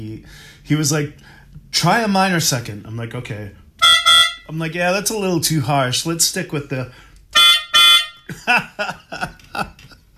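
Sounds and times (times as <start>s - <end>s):
speech: 0.2s - 3.6s, 4.5s - 7.1s, 8.3s - 9.8s
melodica notes imitating airport cart warning beeps: 3.8s - 4.5s, 7.4s - 8.3s.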